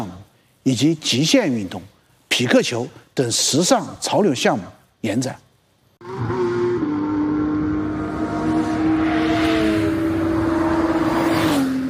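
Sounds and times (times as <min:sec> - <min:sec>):
speech: 0:00.7 - 0:05.4
race car engines roaring: 0:06.0 - 0:11.8.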